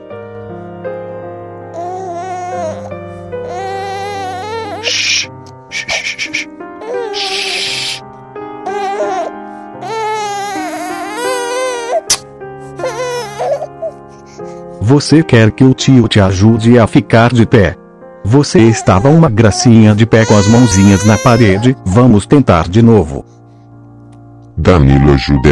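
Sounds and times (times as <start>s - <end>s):
infant girl crying: 1.8s - 8.0s, 8.6s - 12.2s, 12.8s - 14.5s, 18.5s - 21.8s
speech: 14.9s - 23.4s, 24.6s - 25.4s.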